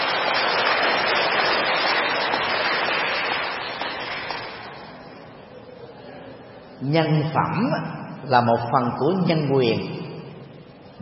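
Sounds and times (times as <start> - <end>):
crowd applauding: 0.0 - 5.1
speech: 6.8 - 10.0.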